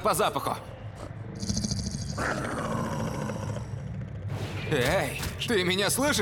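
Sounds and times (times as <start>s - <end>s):
speech: 0.0s - 1.5s, 2.2s - 2.6s, 4.7s - 6.1s
summoned onyx wolf growling and snarling: 1.0s - 3.9s.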